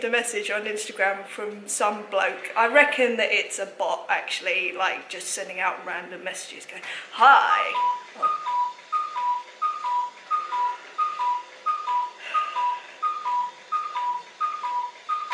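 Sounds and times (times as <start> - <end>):
speech: 0.0 - 8.4
wind-up Swiss clock sounding two-note whistle-like calls: 7.7 - 15.3.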